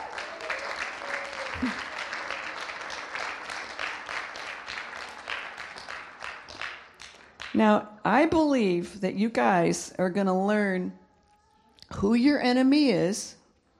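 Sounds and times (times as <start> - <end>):
crowd of many hands clapping: 0.0 - 7.6
speech: 1.6 - 1.9, 7.6 - 11.0, 12.0 - 13.4.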